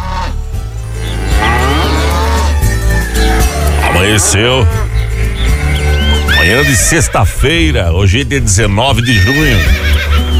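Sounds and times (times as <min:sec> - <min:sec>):
cow mooing: 0:00.0 - 0:07.0
speech: 0:04.0 - 0:04.8, 0:06.5 - 0:10.1.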